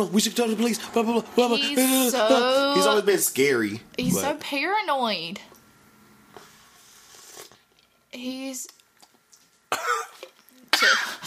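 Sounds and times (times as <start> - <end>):
speech: 0.0 - 5.5, 8.1 - 8.8
person coughing after a strong drink: 9.7 - 11.2.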